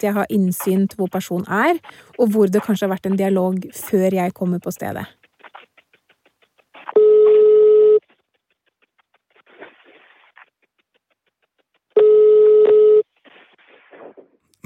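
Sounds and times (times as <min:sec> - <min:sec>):
speech: 0:00.0 - 0:05.2
unanswered phone call ringback tones: 0:07.0 - 0:08.0, 0:12.0 - 0:13.1.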